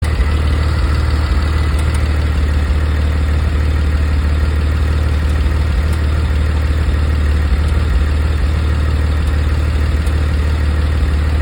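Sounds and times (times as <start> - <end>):
GT4 engine ticking: 0.0 - 11.4.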